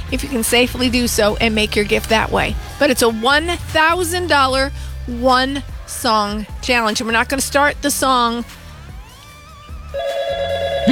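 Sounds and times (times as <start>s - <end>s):
speech: 0.1s - 8.6s
telephone ringing with an incoming call on a fundraising call-in line: 10.0s - 10.9s.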